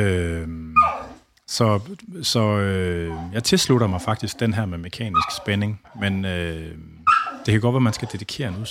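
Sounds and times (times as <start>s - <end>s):
speech: 0.0s - 0.6s, 1.5s - 8.6s
impatient dog barking: 0.8s - 1.1s, 5.1s - 5.5s, 7.1s - 8.1s
impatient dog whining: 0.8s - 1.2s, 5.1s - 6.0s, 7.1s - 8.2s.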